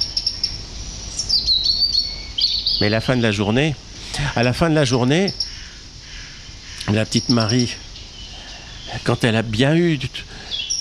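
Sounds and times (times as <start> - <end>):
blackbird, warbler and robin singing in a tree: 0.0 - 10.8
soft hiss: 0.0 - 10.8
speech: 2.8 - 5.4, 6.9 - 7.8, 8.9 - 10.3.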